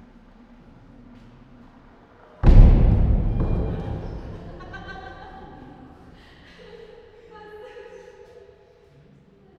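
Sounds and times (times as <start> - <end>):
booming thuds in a monkey house: 2.4 - 5.4
laughter in a monkey house: 4.3 - 8.4.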